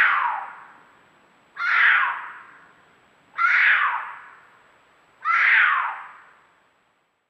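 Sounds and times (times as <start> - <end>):
cougar screaming: 0.0 - 0.6, 1.6 - 2.4, 3.4 - 4.2, 5.2 - 6.1.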